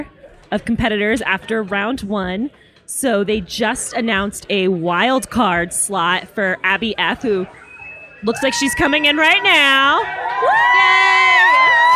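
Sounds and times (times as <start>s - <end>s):
speech: 0.0s - 7.6s, 8.2s - 11.0s
crowd cheering and whooping: 7.4s - 11.9s.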